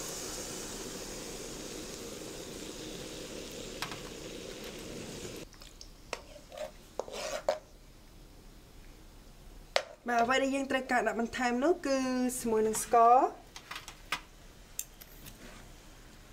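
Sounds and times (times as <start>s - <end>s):
hot coconut milk poured into a pot: 0.0s - 5.9s
stirring hot coconut milk in a pot: 6.1s - 7.7s
speech: 10.1s - 13.4s.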